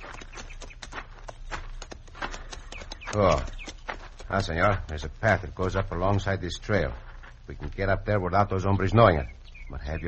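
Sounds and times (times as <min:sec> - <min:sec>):
horses' hooves walking on hard ground: 0:00.0 - 0:07.8
speech: 0:03.1 - 0:03.6, 0:04.3 - 0:10.0.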